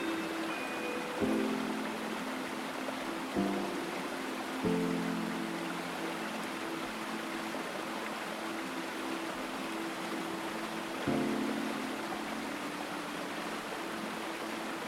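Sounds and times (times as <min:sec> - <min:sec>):
soft low sustained notes of a calm melody: 0:00.0 - 0:14.8
steady dense rushing water: 0:00.0 - 0:14.8.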